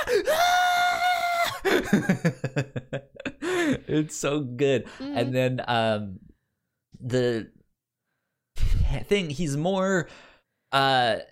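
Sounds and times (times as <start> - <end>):
person imitating a burning man's scream: 0.0 - 1.6
speech: 0.1 - 0.5, 1.6 - 2.7, 3.9 - 6.2, 7.0 - 7.6, 8.9 - 11.2
person laughing: 1.5 - 3.8.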